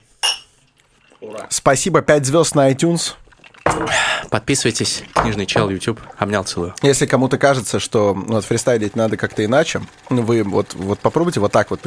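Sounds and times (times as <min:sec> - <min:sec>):
glasses clinking in a toast: 0:00.2 - 0:01.2, 0:03.2 - 0:06.3
speech: 0:01.2 - 0:11.8.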